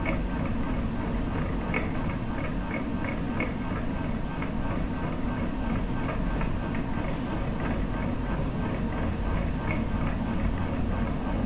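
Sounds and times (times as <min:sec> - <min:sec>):
slow fan: 0:00.0 - 0:11.4.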